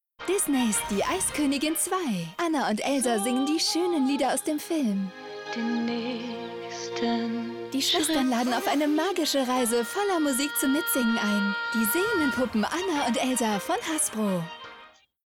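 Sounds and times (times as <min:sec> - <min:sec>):
puppets singing in a TV spot: 0:00.4 - 0:14.7.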